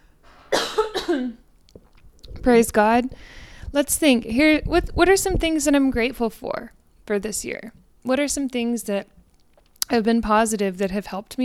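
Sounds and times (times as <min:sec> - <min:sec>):
person clearing throat: 0:00.5 - 0:01.4
speech: 0:01.1 - 0:01.4, 0:02.4 - 0:09.2, 0:09.9 - 0:11.4.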